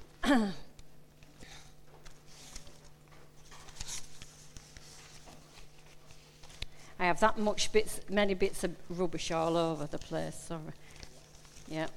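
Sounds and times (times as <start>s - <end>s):
faint steady hum: 0.0s - 11.9s
speech: 0.3s - 0.6s, 7.1s - 11.0s, 11.7s - 11.9s
sheets of paper rustling and crinkling as they are shuffled: 2.0s - 6.7s, 9.0s - 11.9s.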